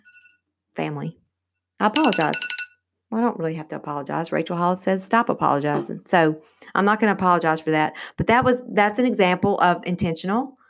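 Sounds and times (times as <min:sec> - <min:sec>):
electronic phone alarm tone: 0:00.0 - 0:00.3, 0:02.0 - 0:02.7
speech: 0:00.8 - 0:01.2, 0:01.8 - 0:02.5, 0:03.1 - 0:10.6.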